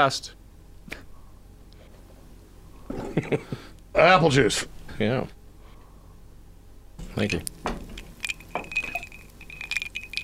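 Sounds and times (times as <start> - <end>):
speech: 0.0 - 1.0, 3.2 - 5.4, 7.2 - 7.6
light clattering and handling noises: 7.0 - 10.2
glasses clinking in a toast: 7.1 - 10.2.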